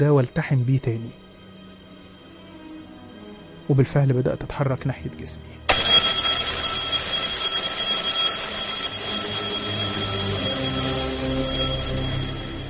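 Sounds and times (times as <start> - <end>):
speech: 0.0 - 1.2, 3.7 - 5.6
alarm clock ringing: 5.7 - 12.6.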